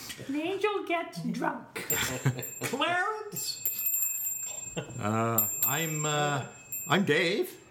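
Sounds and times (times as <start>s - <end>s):
speech: 0.2s - 3.6s, 4.8s - 7.6s
small handheld bell ringing: 1.9s - 7.7s.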